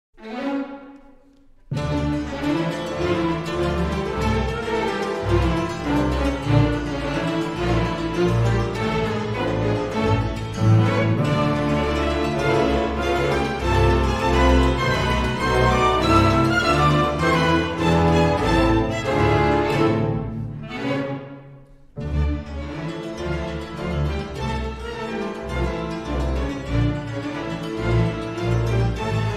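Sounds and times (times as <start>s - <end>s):
character dance intermezzo music: 0.2s - 29.3s.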